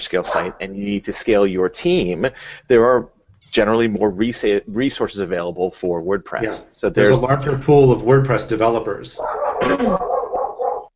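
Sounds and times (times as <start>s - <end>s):
speech: 0.0s - 10.2s
dog barking: 0.2s - 0.7s, 6.4s - 6.7s, 9.2s - 10.9s.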